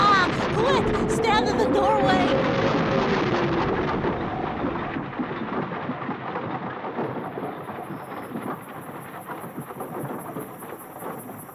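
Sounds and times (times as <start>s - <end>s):
deep rumbling thunder: 0.0s - 11.5s
howling tornado winds in a thunderstorm: 0.0s - 11.5s
pounding rain in a thunderstorm: 0.0s - 11.5s.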